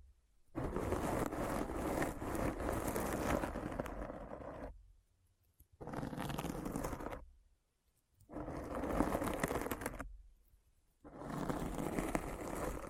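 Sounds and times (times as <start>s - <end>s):
dense scratching: 0.6s - 4.8s, 5.8s - 7.2s, 8.3s - 10.1s, 11.0s - 12.8s.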